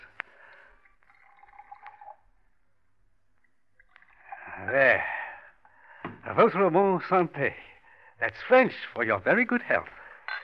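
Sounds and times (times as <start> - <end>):
brandy pouring and gurgling into brandy snifter glasses: 0.2 - 2.6, 3.4 - 5.1
speech: 6.4 - 7.6, 8.2 - 10.0.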